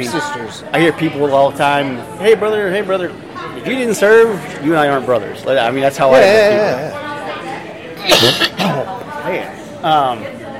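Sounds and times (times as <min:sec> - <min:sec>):
speech: 0:00.0 - 0:07.1, 0:08.0 - 0:10.4
person with a persistent cough coughing: 0:08.0 - 0:08.9.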